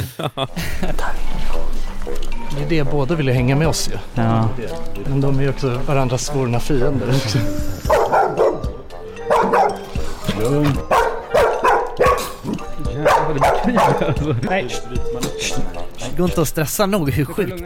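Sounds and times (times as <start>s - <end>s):
laughter: 0.0s - 1.4s, 6.8s - 7.9s, 12.4s - 15.1s
speech: 0.2s - 8.0s, 10.4s - 10.9s, 13.8s - 17.6s
dog barking: 7.9s - 9.9s, 10.6s - 12.4s, 13.0s - 14.1s.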